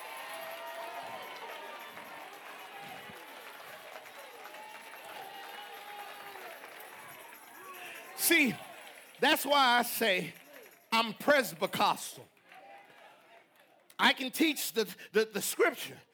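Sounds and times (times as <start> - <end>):
large audience clapping: 0.0 - 14.2
speech: 8.3 - 8.6, 9.2 - 10.4, 11.0 - 12.3, 14.0 - 16.1.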